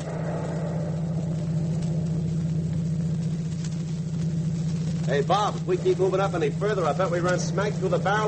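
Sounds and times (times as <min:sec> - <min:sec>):
truck engine droning while driving along a road: 0:00.0 - 0:08.2
speech: 0:05.1 - 0:08.2.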